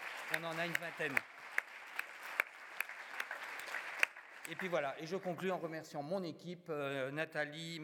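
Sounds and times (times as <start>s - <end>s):
small audience clapping: 0.0s - 5.5s
speech: 0.3s - 1.4s, 4.5s - 7.8s.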